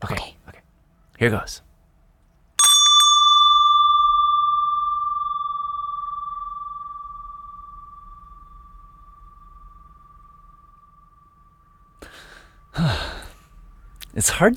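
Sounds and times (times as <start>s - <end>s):
speech: 1.2s - 1.7s, 14.2s - 14.5s
single bright bell strike ringing: 2.6s - 12.2s
brief breathy sigh: 12.0s - 13.6s.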